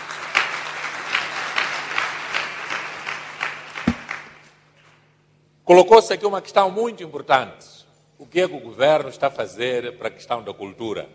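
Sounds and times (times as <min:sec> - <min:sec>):
room full of people applauding: 0:00.0 - 0:04.4
speech: 0:05.7 - 0:07.7, 0:08.3 - 0:11.1.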